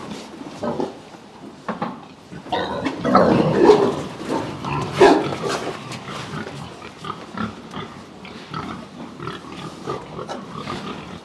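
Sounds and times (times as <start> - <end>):
pigs grunting on an intensive pig farm in Texas, USA: 2.3 - 11.2.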